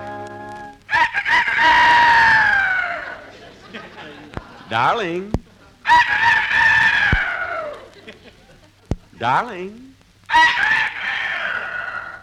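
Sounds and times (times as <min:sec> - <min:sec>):
rooster crowing: 0:00.9 - 0:03.3, 0:05.9 - 0:07.9, 0:10.3 - 0:12.2
laughter: 0:01.4 - 0:05.9, 0:07.2 - 0:09.2
speech: 0:04.7 - 0:05.4, 0:09.2 - 0:10.8.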